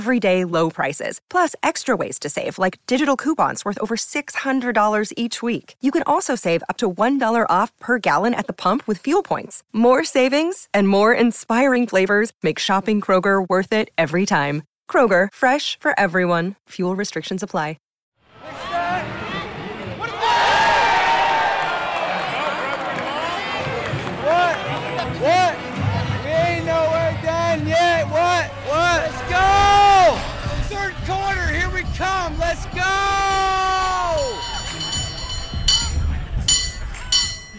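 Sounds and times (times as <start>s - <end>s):
speech: 0.0s - 17.8s
outdoor crowd noise at a watch party: 18.3s - 37.5s
man yelling and cheering at an outdoor watch party: 26.3s - 34.4s.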